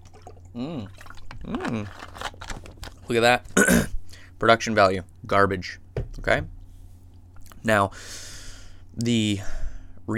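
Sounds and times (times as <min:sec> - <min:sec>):
person drinking water with gulping swallows: 0:00.0 - 0:02.1
low steady hum: 0:00.0 - 0:10.1
speech: 0:00.6 - 0:02.2, 0:03.1 - 0:06.6, 0:07.6 - 0:08.3, 0:09.0 - 0:10.1.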